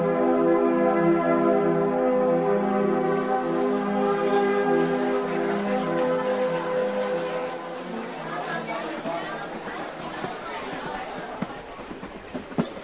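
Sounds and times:
crowd chatter at a railway station: 0.1 - 12.8
train pulling into a railway station: 5.8 - 12.8.

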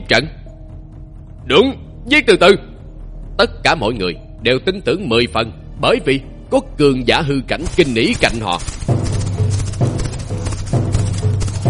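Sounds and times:
speech: 0.1 - 0.4, 1.5 - 2.7, 3.4 - 8.9
galloping cavalry horse hooves pounding the ground: 7.7 - 11.6.

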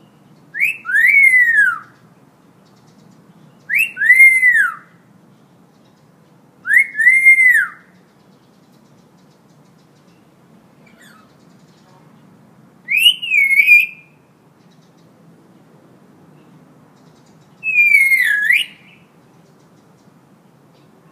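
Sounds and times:
Hill myna in full active song: 0.0 - 2.0, 3.6 - 4.9, 6.6 - 7.9, 12.9 - 14.2, 17.6 - 19.0.

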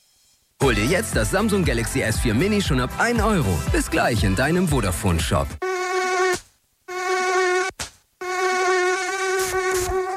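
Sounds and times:
speech: 0.6 - 5.7
mosquito buzzing: 5.6 - 10.1.

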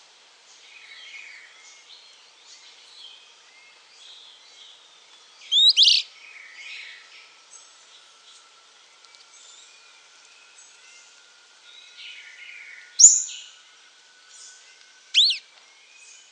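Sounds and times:
soft twittering: 5.4 - 16.2
long-tailed tyrant Colonia colonus colonus sharp high chips: 15.2 - 15.4.

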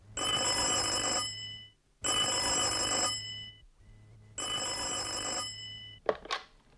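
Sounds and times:
metallic telephone bell ringing: 0.2 - 3.6, 4.4 - 6.0.

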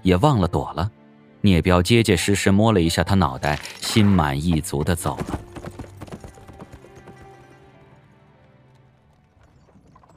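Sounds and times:
speech: 0.0 - 5.5
horse hooves clip-clopping as a horse-drawn carriage moves on: 3.4 - 10.1.

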